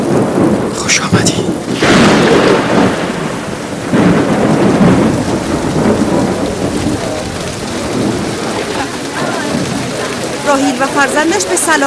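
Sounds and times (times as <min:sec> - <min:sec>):
deep loud rumbles of thunder: 0:00.0 - 0:11.8
heavy rain pouring down over Fadan: 0:00.0 - 0:11.8
speech: 0:11.1 - 0:11.8.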